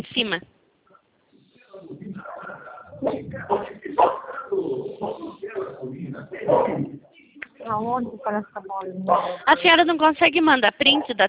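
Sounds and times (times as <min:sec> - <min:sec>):
speech: 0:00.0 - 0:00.6, 0:03.0 - 0:07.0, 0:07.7 - 0:11.2
voices over a phone line: 0:00.0 - 0:11.2
dog barking over a phone line: 0:04.0 - 0:04.4.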